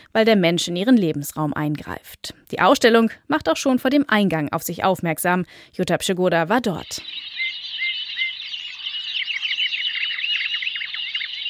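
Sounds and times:
speech: 0:00.1 - 0:07.3
dense chorus of many birds singing from a hidden loudspeaker: 0:06.7 - 0:11.4.

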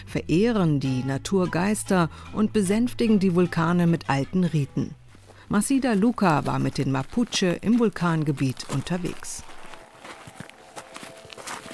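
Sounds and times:
speech: 0:00.1 - 0:09.5
footsteps crunching on black volcanic soil along a hiking path: 0:05.1 - 0:11.7.

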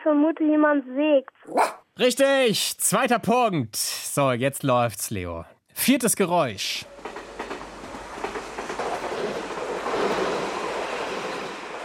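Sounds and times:
speech: 0:00.0 - 0:06.9
train rolling along rails with clickety-clack: 0:06.6 - 0:11.8.

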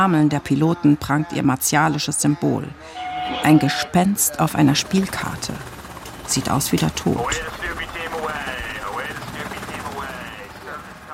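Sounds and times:
speech: 0:00.0 - 0:07.8
military helicopter turbine whine spooling up: 0:02.7 - 0:11.1
military helicopter rotors chopping on a naval ship preparing for takeoff: 0:03.9 - 0:11.1.

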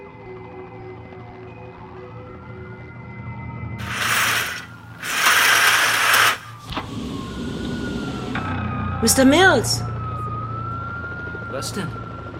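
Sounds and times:
emergency vehicle sirens wailing in a busy street: 0:00.0 - 0:12.3
rushing, hissing traffic noise: 0:03.8 - 0:08.4
speech: 0:09.0 - 0:09.9, 0:11.6 - 0:12.0.

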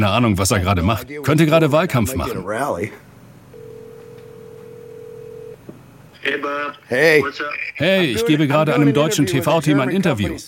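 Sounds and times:
speech: 0:00.0 - 0:03.0, 0:06.2 - 0:10.4
telephone call tone: 0:03.5 - 0:05.6.

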